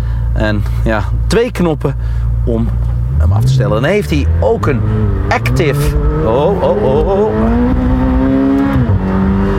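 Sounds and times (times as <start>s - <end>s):
speech: 0.4s - 7.7s
car engine roaring at high revs during hard acceleration: 2.3s - 9.5s.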